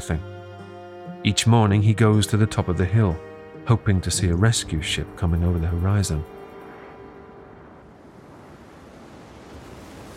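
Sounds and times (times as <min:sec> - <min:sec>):
speech: 0:00.0 - 0:00.3, 0:01.2 - 0:06.4
heavy surf on a stormy ocean: 0:03.5 - 0:10.1
gusting wind roaring across the microphone: 0:04.7 - 0:10.1.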